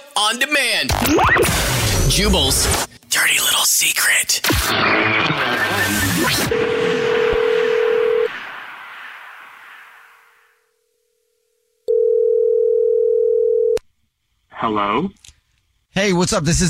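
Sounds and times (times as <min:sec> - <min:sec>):
speech: 0:00.2 - 0:07.0, 0:14.7 - 0:15.3, 0:16.0 - 0:16.6
noisy burst: 0:00.9 - 0:03.0, 0:04.4 - 0:10.7
telephone dial tone of an outgoing call: 0:06.5 - 0:08.3, 0:11.9 - 0:13.8.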